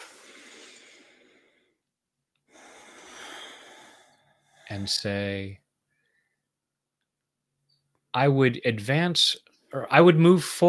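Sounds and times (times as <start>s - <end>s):
deep breath during a relaxation exercise: 0.0s - 4.9s, 5.9s - 6.5s
speech: 4.7s - 5.6s, 8.2s - 10.6s.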